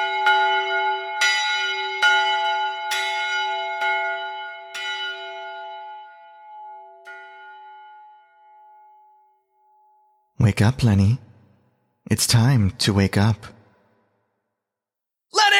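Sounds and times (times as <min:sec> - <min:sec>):
loud resonant bells ringing: 0:00.0 - 0:09.2
speech: 0:10.5 - 0:11.3, 0:12.1 - 0:13.6.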